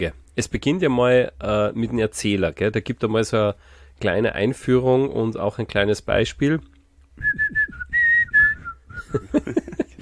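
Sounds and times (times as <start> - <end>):
speech: 0.0 - 7.6, 9.1 - 9.8
person whistling a short melody: 7.2 - 9.2
laughter: 9.0 - 9.9.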